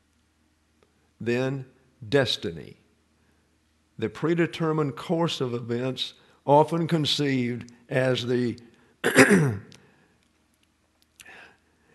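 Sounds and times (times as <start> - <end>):
speech: 1.2 - 2.8, 4.0 - 9.7
person clearing throat: 9.0 - 9.7.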